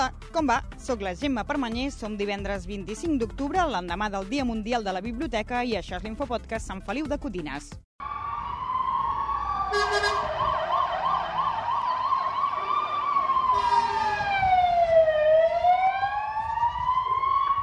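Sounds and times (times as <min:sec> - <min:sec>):
speech: 0:00.0 - 0:08.1
fire engine siren wailing in Sant Feliu de Codines: 0:08.0 - 0:17.6
rumbling traffic noise: 0:08.0 - 0:17.6.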